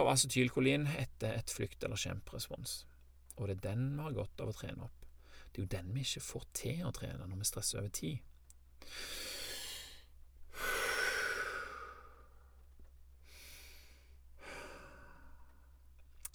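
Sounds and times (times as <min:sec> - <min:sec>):
speech: 0:00.0 - 0:09.3
slow controlled deep breathing: 0:05.2 - 0:05.6, 0:08.8 - 0:15.9.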